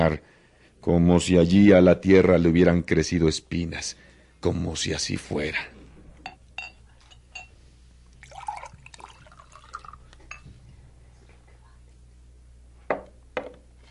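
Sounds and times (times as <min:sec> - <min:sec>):
speech: 0:00.0 - 0:05.7
glass beer bottle clinks: 0:06.3 - 0:07.5, 0:10.3 - 0:10.5.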